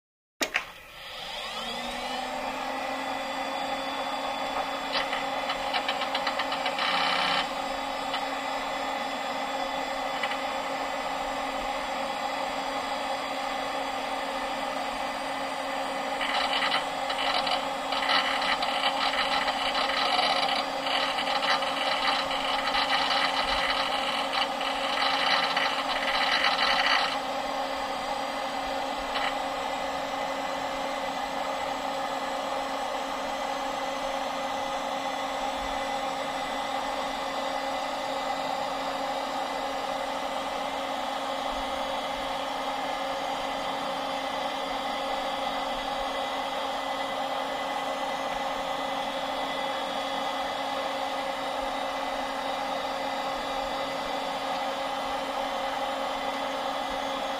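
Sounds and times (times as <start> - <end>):
computer turning on: 0.4 - 11.8, 15.2 - 27.7, 28.5 - 29.7
computer fan noise: 0.4 - 57.3.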